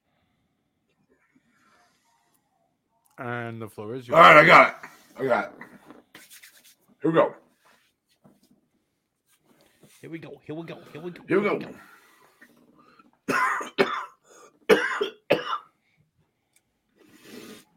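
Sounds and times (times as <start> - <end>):
speech: 3.2 - 5.8, 7.0 - 7.4, 10.0 - 11.9
harsh coughs: 13.3 - 15.7.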